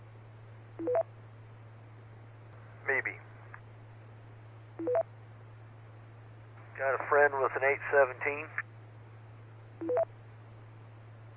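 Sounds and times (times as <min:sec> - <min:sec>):
steady low hum: 0:00.0 - 0:11.3
speech: 0:07.1 - 0:08.6
three-note electronic telephone tone of an incoming call: 0:09.8 - 0:10.0.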